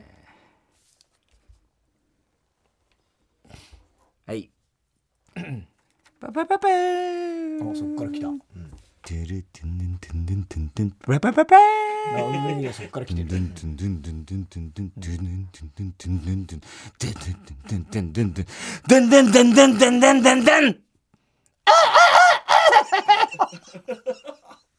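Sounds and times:
speech: 4.3s - 4.6s, 5.6s - 8.5s, 9.1s - 20.9s, 23.3s - 24.4s
man making lower vocal noises: 7.0s - 20.8s
man imitating chicken squawks and clucks: 10.9s - 12.8s, 17.1s - 20.8s, 21.7s - 23.2s
laughter: 11.1s - 13.6s, 21.7s - 24.6s.

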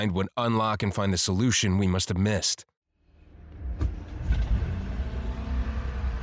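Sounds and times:
speech: 0.0s - 2.7s
car engine rumble while driving: 3.0s - 6.2s.

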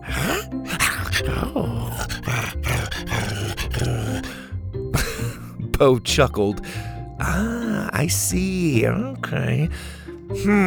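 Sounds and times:
playful dinosaur growling: 0.0s - 5.6s
speech: 0.1s - 2.7s, 5.8s - 10.6s.

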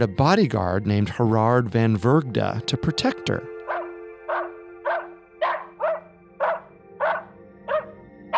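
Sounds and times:
speech: 0.0s - 3.5s
dog barking: 3.7s - 8.3s.

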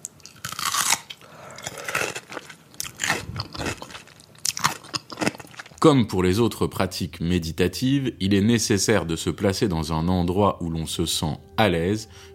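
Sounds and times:
someone biting into and chewing a large pickle: 0.0s - 5.8s
speech: 5.8s - 12.3s.

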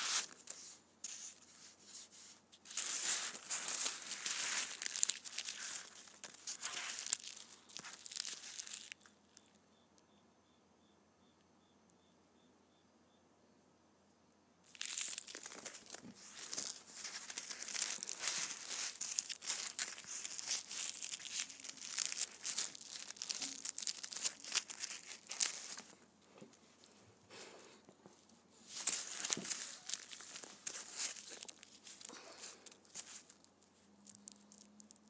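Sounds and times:
candy wrappers crinkling: 0.0s - 9.5s, 14.7s - 35.0s.

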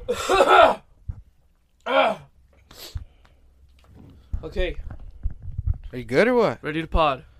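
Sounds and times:
person clearing sore throat: 0.0s - 0.8s
sick person coughing: 0.0s - 0.8s
speech: 0.1s - 0.6s, 4.5s - 4.9s, 5.9s - 7.3s.

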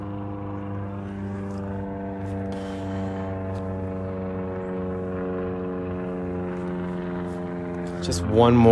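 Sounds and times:
propeller airplane flying overhead with low engine hum: 0.0s - 8.7s
speech: 8.0s - 8.7s.

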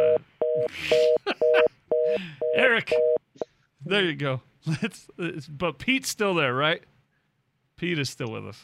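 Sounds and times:
telephone line disconnect tone as a call drops: 0.0s - 3.2s
speech: 1.6s - 3.2s, 3.9s - 6.9s, 7.8s - 8.6s.

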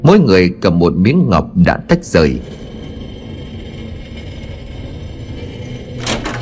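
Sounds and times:
speech: 0.0s - 2.6s
large round stone block rolling to seal a cave mouth: 1.8s - 6.4s.

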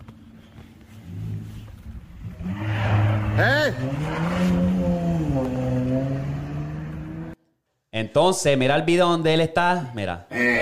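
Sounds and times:
car engine revving: 2.2s - 7.4s
speech: 3.4s - 5.5s, 8.0s - 10.6s.

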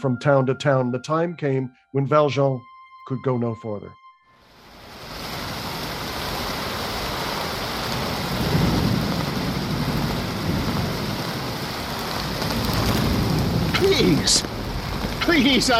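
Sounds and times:
speech: 0.0s - 4.0s, 13.9s - 14.5s, 15.2s - 15.7s
heavy rain: 4.5s - 15.7s.

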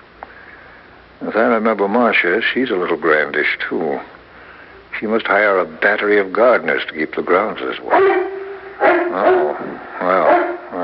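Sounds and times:
speech: 1.2s - 4.2s, 5.0s - 8.2s, 9.1s - 10.2s
Harlequin Great Dane barking: 7.9s - 10.8s.

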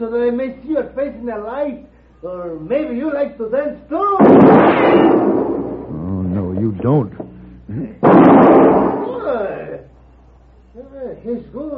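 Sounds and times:
speech: 0.0s - 5.4s, 6.6s - 9.8s, 10.8s - 11.7s
gunshot fired to knock a gun out of someone's hand: 4.2s - 5.9s, 8.0s - 9.5s.

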